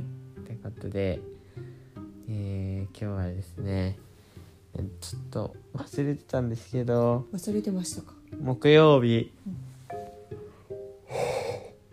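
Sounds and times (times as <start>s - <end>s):
speech: 0.8s - 1.7s, 2.3s - 4.1s, 4.8s - 9.6s
person yawning: 11.0s - 11.8s.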